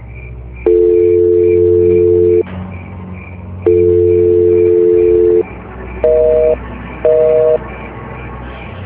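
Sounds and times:
low hum: 0.0s - 7.6s
busy signal from a phone call to a switched-off phone: 0.7s - 2.4s, 3.7s - 5.4s, 6.0s - 7.6s.

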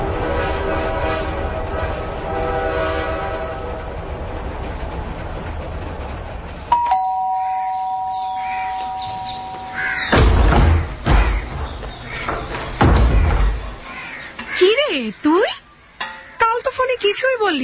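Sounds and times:
train engine whistle at night: 0.0s - 3.9s
train engine rumbling through the night with a droning tonal hum: 0.0s - 17.6s.

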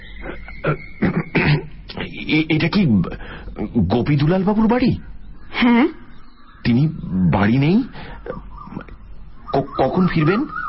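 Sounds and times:
speech: 0.6s - 1.0s, 2.3s - 6.0s, 6.6s - 8.5s, 9.5s - 10.6s
person clearing throat: 0.6s - 1.7s.

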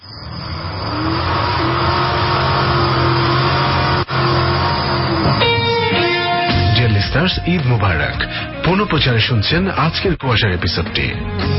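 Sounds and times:
car engine revving and driving off fast: 0.0s - 7.4s
speech: 7.2s - 11.5s.

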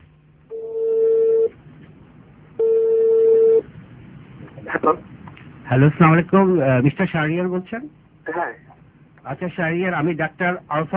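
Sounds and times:
outgoing phone call ringback tones on the line: 0.5s - 1.6s, 2.6s - 3.6s
speech: 4.8s - 5.1s, 5.7s - 8.6s, 9.2s - 10.9s.

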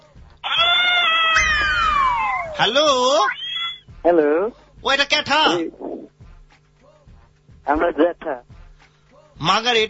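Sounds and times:
cat meowing: 0.5s - 2.6s
speech: 2.6s - 3.4s, 4.0s - 5.9s, 7.7s - 8.5s, 9.4s - 9.8s.

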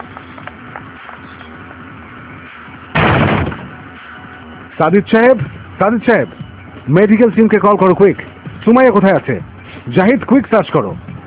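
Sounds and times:
study room door being broken down with a heavy crashing impact: 3.0s - 3.7s
speech: 4.8s - 11.0s.

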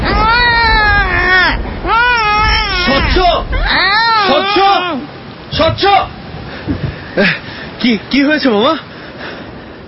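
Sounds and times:
person crying from inside a grave: 0.0s - 5.1s
speech: 5.6s - 6.1s, 7.2s - 8.9s.

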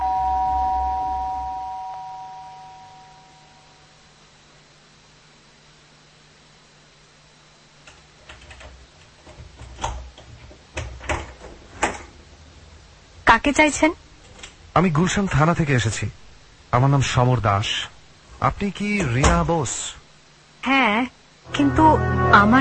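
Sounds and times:
doorbell electronic chime: 0.0s - 3.6s
speech: 13.3s - 14.0s, 14.8s - 20.0s, 20.6s - 22.5s.

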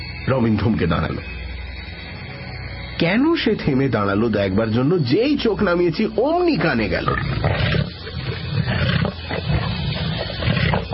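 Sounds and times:
speech: 0.2s - 1.4s, 3.0s - 7.7s
angry leopard roaring from a thicket: 6.9s - 10.9s.

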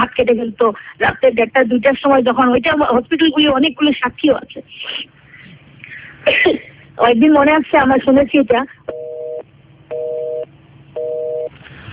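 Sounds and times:
speech: 0.1s - 5.2s, 6.2s - 9.0s
telephone busy tone after a call line dropped: 8.9s - 11.5s.

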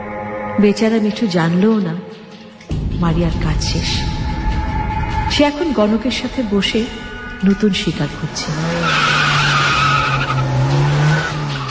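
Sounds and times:
speech: 0.6s - 4.2s, 5.3s - 9.2s
expensive car engine droning while pulling up: 3.6s - 11.6s
expensive car tire-like squealing while stopping: 7.5s - 11.6s.

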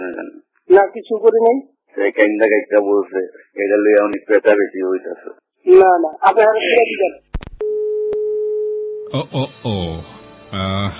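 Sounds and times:
speech: 0.1s - 7.3s, 9.1s - 10.9s
steady phone line tone after a call cuts off: 7.6s - 9.1s.

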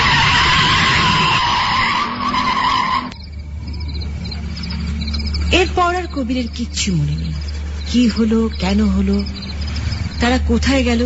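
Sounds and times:
car tires squealing while skidding to a stop on a wet road: 0.0s - 3.2s
low steady rumble: 3.1s - 11.0s
speech: 5.8s - 9.5s, 10.2s - 11.0s.

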